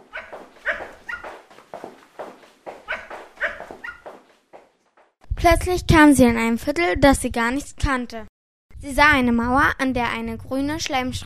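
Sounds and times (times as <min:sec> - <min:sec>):
dog barking: 0:00.0 - 0:04.2
speech: 0:05.4 - 0:11.2.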